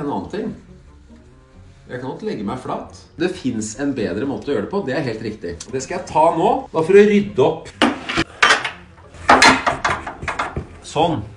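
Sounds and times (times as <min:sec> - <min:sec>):
speech: 0:00.1 - 0:00.7, 0:01.9 - 0:08.0, 0:10.9 - 0:11.3
hard objects shifted and wedged around a desk clattering and scraping: 0:07.7 - 0:10.8.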